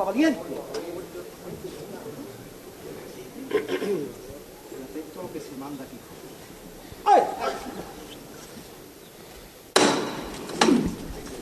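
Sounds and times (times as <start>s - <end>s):
speech: 0.0s - 0.8s, 5.3s - 6.4s
laughter: 0.0s - 9.1s
low steady murmur of outdoor crowd: 0.0s - 11.4s
metal hammer knocker knocking to lift a procession float: 9.8s - 10.9s.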